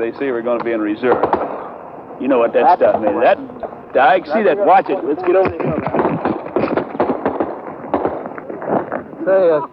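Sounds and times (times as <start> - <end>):
speech: 0.0 - 1.5, 2.2 - 5.8, 9.3 - 9.7
rapid sniper rifle gunfire striking near troops: 1.0 - 1.7, 5.5 - 8.9.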